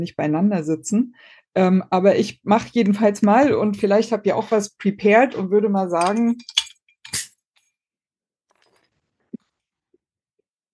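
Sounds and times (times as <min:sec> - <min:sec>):
speech: 0:00.0 - 0:07.3
glass clinking against glass in a toast: 0:06.0 - 0:07.3.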